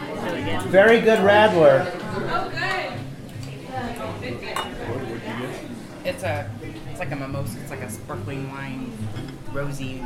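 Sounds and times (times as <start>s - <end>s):
speech: 0.4s - 2.8s, 6.0s - 10.0s
glasses clinking in a toast: 4.5s - 5.0s
tableware clatter: 4.5s - 5.0s, 9.0s - 9.5s.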